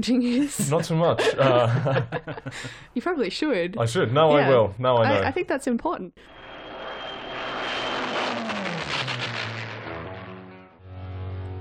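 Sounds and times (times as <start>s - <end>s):
speech: 0.0s - 6.5s
laughter: 0.6s - 2.8s
Spitfire fighter plane engine roaring overhead: 6.2s - 11.1s.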